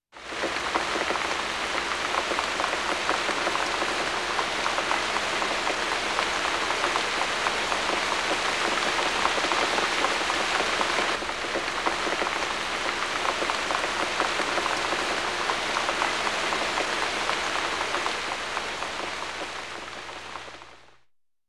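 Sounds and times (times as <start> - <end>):
rain in woods: 0.1 - 21.0.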